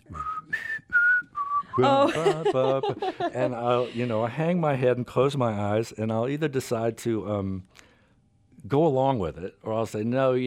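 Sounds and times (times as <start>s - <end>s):
person whistling a radio theme tune: 0.1s - 2.0s
laughter: 1.8s - 4.2s
speech: 1.8s - 7.8s, 8.6s - 10.4s.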